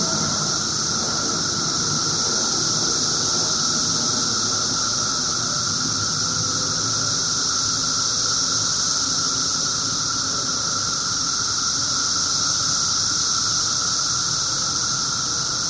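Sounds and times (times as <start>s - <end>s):
low droning tone: 0.0s - 5.3s
17-year periodical cicadas buzzing: 0.0s - 15.6s.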